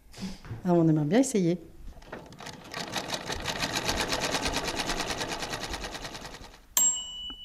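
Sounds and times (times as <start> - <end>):
speech: 0.6 - 1.7
latest-model sewing machine stitching: 2.0 - 6.7.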